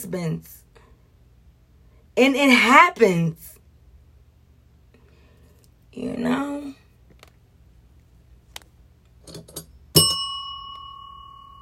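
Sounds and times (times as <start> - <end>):
speech: 0.0 - 0.6, 2.2 - 3.5, 6.0 - 6.8
bell struck with a bright clear ding: 10.0 - 11.5.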